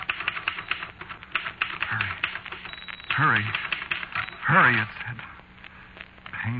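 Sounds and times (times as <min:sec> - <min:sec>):
typewriter keys clacking: 0:00.0 - 0:04.3
speech: 0:03.2 - 0:03.7, 0:04.5 - 0:05.3.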